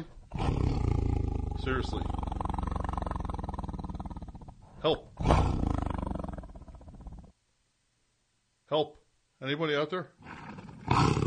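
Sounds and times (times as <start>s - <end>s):
tiger roaring: 0.0s - 7.3s, 10.2s - 11.2s
speech: 1.6s - 2.2s, 4.8s - 5.6s, 8.7s - 10.2s.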